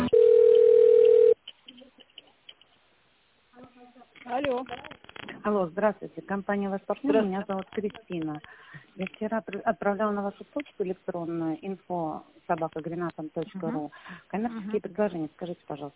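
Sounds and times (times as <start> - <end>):
telephone hold music while a call is transferred to an office: 0.1 - 1.4
speech: 5.8 - 15.9.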